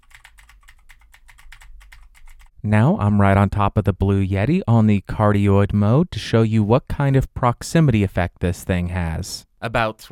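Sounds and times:
typing on clicky mechanical keyboard with Cherry MX Blue switches: 0.0s - 2.5s
speech: 2.6s - 10.1s.

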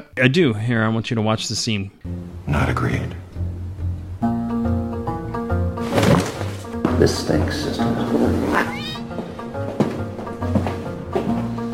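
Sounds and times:
speech: 0.2s - 3.2s, 7.0s - 8.9s
steady tonal film music: 2.0s - 11.7s
cat yowling as thrown out of a window: 8.5s - 9.0s.

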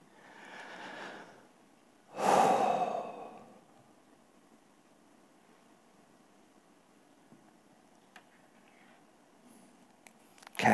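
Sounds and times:
deep breathing during a Sunday service: 0.1s - 1.5s, 2.1s - 3.7s.

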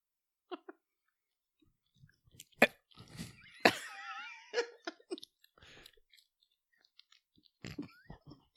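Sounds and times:
chewing gluten-free baked goods with nuts: 1.0s - 3.6s, 4.9s - 8.5s.

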